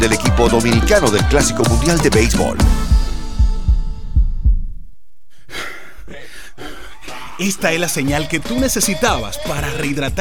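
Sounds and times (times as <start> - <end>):
speech: 0.0 - 2.9, 7.4 - 10.2
deep booming heartbeat sound effect: 0.0 - 5.3.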